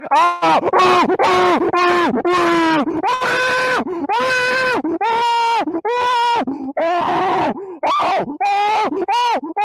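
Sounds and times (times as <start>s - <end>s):
person screaming: 0.0s - 9.6s.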